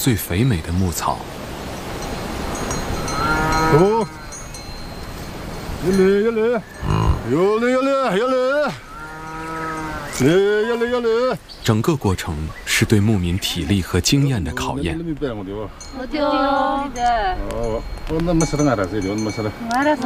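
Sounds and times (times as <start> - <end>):
speech: 0.0 - 1.4, 3.7 - 4.2, 5.8 - 8.8, 10.2 - 20.0
herd of cattle mooing on a high-altitude Tibetan pasture: 3.0 - 4.5, 6.1 - 11.3.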